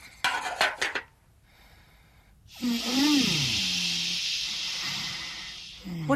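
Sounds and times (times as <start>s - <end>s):
kettle hissing as it heats: 2.5s - 6.1s.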